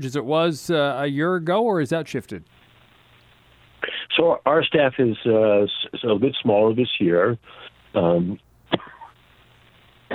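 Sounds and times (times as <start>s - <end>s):
speech: 0.0s - 2.6s, 4.2s - 8.8s
throaty cough: 8.7s - 9.1s.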